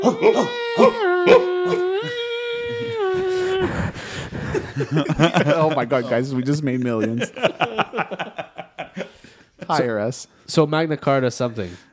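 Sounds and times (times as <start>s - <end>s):
speech: 0.0s - 1.4s, 4.8s - 8.5s, 9.7s - 11.9s
voice imitating Hungarian police dogs barking: 0.0s - 3.7s
laughter: 2.9s - 9.8s.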